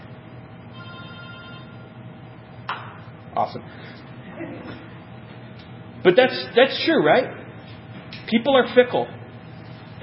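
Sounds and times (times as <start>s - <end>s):
dense hum: 0.0s - 10.0s
cell phone ringing with electronic ringtone: 0.7s - 1.8s
speech: 3.4s - 4.9s, 6.0s - 7.4s, 8.3s - 9.2s.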